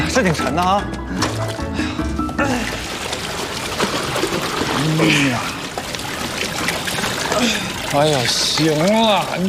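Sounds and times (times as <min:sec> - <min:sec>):
speech: 0:00.2 - 0:01.8, 0:02.4 - 0:02.8, 0:04.8 - 0:05.5, 0:07.4 - 0:09.4
water pouring out of a bucket: 0:02.5 - 0:09.4.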